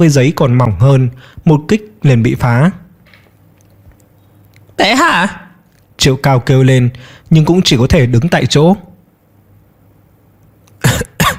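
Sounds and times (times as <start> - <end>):
speech: 0.0 - 2.8, 4.8 - 5.4, 6.0 - 8.9
weakened injured man coughing: 10.8 - 11.3.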